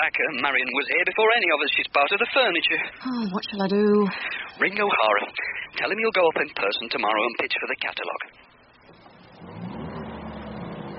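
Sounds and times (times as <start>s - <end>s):
speech: 0.0s - 8.5s
car engine rumble driving along country lanes: 8.8s - 10.9s.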